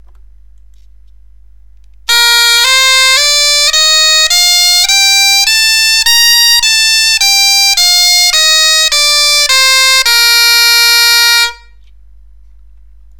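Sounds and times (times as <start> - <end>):
bombarde playing a complete scale up and down: 2.1 - 11.8.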